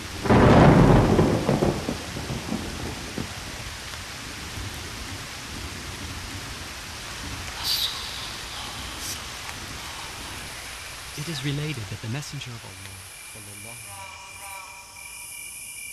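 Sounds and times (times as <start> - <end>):
loud thunderclap rumbling: 0.0 - 13.8
steady rain hissing and pattering: 0.0 - 15.0
faint high crackle: 7.5 - 15.9
speech: 11.3 - 13.1.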